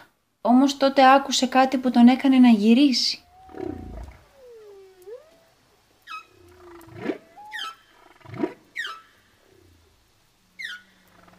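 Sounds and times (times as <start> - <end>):
speech: 0.5 - 3.9
whale singing in long sweeping tonal calls: 3.0 - 11.3.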